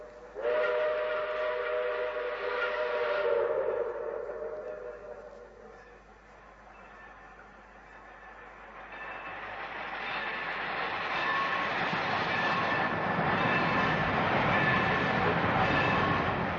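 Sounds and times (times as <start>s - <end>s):
train whistle: 0.0s - 6.1s, 11.1s - 11.7s, 12.4s - 16.5s
train passing through without stopping: 0.0s - 16.5s.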